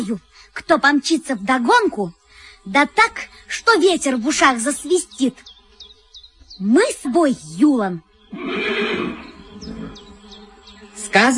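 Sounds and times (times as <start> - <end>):
speech: 0.0 - 5.5, 6.6 - 9.2, 11.1 - 11.3
faint high squeaky chirps: 0.0 - 11.3
horse neighing: 8.3 - 10.1.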